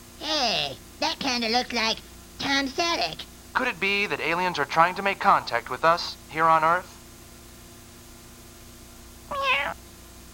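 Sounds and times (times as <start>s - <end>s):
speech: 1.4s - 6.9s
cat meowing: 9.3s - 9.8s.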